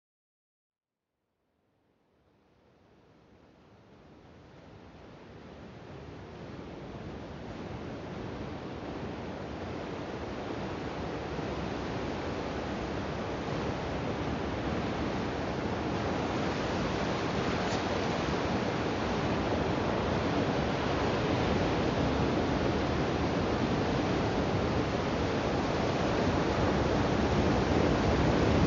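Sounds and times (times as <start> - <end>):
beach ambience at Linda Mar Beach: 6.0 - 28.6.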